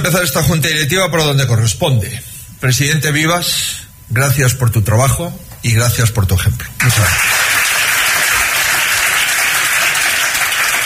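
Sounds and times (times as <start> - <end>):
speech: 0.0 - 7.4
crowd applause: 6.8 - 10.8.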